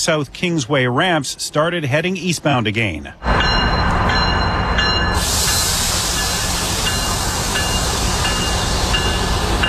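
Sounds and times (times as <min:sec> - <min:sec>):
speech: 0:00.0 - 0:03.7
commuter train rolling along the tracks: 0:00.0 - 0:09.6
bright hiss of commuter train wheels and air: 0:05.1 - 0:09.6.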